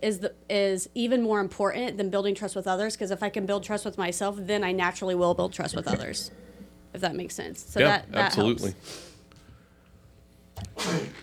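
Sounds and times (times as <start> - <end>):
speech: 0.0 - 9.1, 10.6 - 11.2
person sneezing: 10.6 - 11.2.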